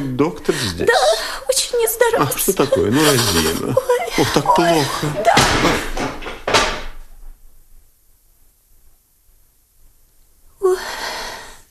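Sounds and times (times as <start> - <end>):
speech: 0.1 - 6.2
laughter: 2.2 - 6.1
chair being knocked over: 5.0 - 7.1.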